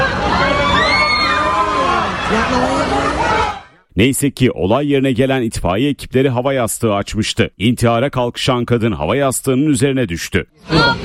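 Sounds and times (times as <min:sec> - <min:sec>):
bystanders screaming and shouting as a woman jumps from a building: 0:00.0 - 0:03.8, 0:10.6 - 0:11.0
speech: 0:04.0 - 0:11.0.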